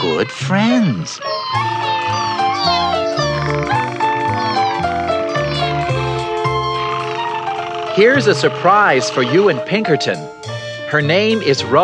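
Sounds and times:
speech: 0:00.2 - 0:01.9, 0:08.0 - 0:11.8
kitten meowing: 0:01.2 - 0:09.7.

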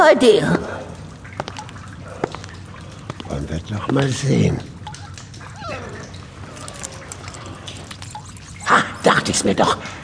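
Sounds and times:
speech: 0:00.1 - 0:00.8, 0:03.3 - 0:04.7, 0:09.3 - 0:10.0
small dog whimpering: 0:05.0 - 0:08.7.

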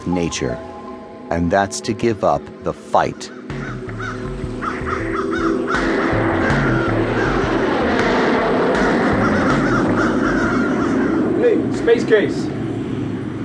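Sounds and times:
speech: 0:00.1 - 0:00.7, 0:01.3 - 0:03.9, 0:11.9 - 0:12.5
crows cawing while eating a dead seagull on a runway: 0:03.1 - 0:11.9
steady loud rumbling roar on a runway: 0:03.8 - 0:11.7.

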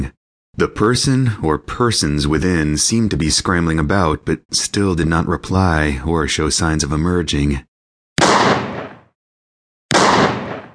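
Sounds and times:
speech: 0:00.6 - 0:07.7
shotgun blasts firing double-aught buckshot at an old wooden shack: 0:08.2 - 0:09.1, 0:09.9 - 0:10.7.

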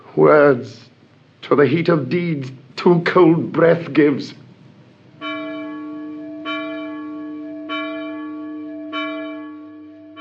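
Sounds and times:
speech: 0:00.2 - 0:04.4
single deep bell tolling a death knell: 0:05.2 - 0:10.1.

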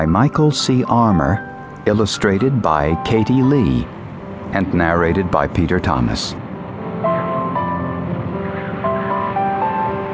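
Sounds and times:
speech: 0:00.0 - 0:06.4
dusk wind blowing: 0:01.2 - 0:10.1
ocean waves: 0:02.6 - 0:10.1.

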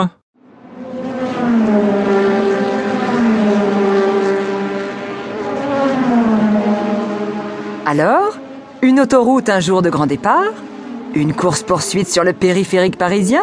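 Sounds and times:
speech: 0:00.0 - 0:00.2, 0:07.9 - 0:13.4
racing car engine roaring and revving through gears: 0:00.4 - 0:13.4.

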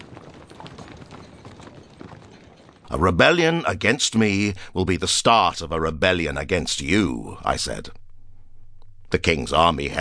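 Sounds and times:
horse hooves clip-clopping at a trot: 0:00.0 - 0:04.4
speech: 0:02.9 - 0:08.0, 0:09.1 - 0:09.9.

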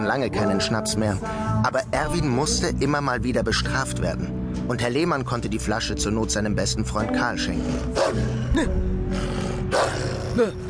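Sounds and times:
speech: 0:00.0 - 0:10.6
dog growling: 0:07.5 - 0:10.6
dog barking: 0:08.0 - 0:08.2, 0:09.7 - 0:10.0.

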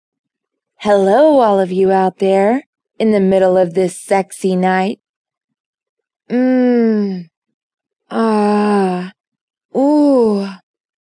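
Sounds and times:
speech: 0:00.8 - 0:05.0, 0:06.3 - 0:07.3, 0:08.1 - 0:09.2, 0:09.8 - 0:10.6
woman moaning: 0:08.1 - 0:09.1, 0:09.8 - 0:10.6.

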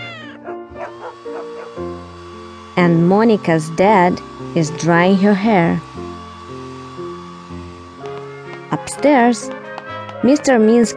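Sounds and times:
cat meowing: 0:00.0 - 0:00.6
speech: 0:02.8 - 0:05.9, 0:09.0 - 0:09.6, 0:10.2 - 0:10.9.

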